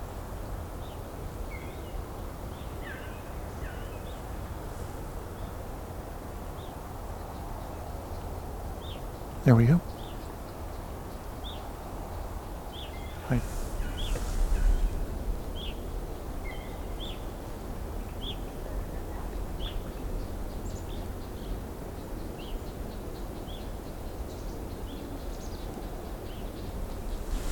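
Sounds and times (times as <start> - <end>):
steady wash of noise: 0.0 - 27.5
speech: 9.5 - 9.9, 13.3 - 13.5
single bird giving short high chips overhead: 12.7 - 17.3.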